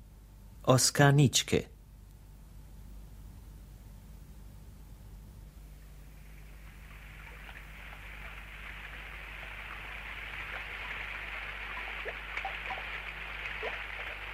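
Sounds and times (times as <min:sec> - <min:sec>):
speech: 0:00.7 - 0:01.7
steady rain: 0:05.8 - 0:14.3.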